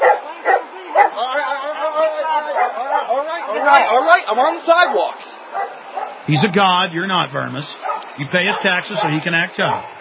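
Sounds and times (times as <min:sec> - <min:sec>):
German Shepherd dogs barking: 0:00.0 - 0:01.3, 0:02.4 - 0:03.9, 0:04.7 - 0:06.6, 0:07.7 - 0:09.9
speech: 0:03.5 - 0:05.2, 0:06.3 - 0:09.9.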